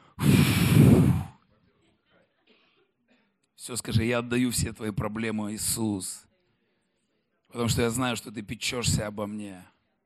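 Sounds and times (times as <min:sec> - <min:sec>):
deep exhale while relaxing in a chair during a prayer: 0:00.0 - 0:01.4
speech: 0:03.6 - 0:06.3, 0:07.5 - 0:09.8.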